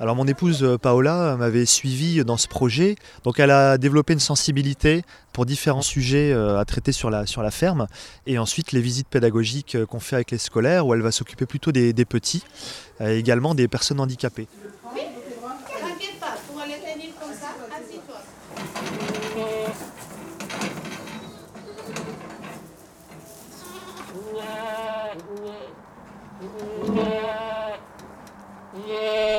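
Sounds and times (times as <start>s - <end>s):
speech: 0.0s - 15.1s
goats bleating on a farm: 18.8s - 20.0s, 23.5s - 25.8s, 26.4s - 27.9s, 28.7s - 29.3s.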